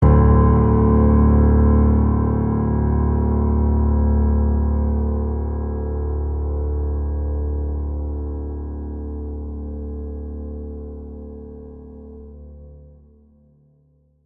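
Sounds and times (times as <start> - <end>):
low piano note: 0.0 - 13.6.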